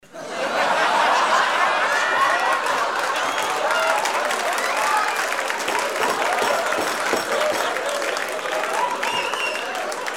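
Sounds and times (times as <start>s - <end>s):
laughter: 0.1s - 3.7s
applause: 1.7s - 10.1s.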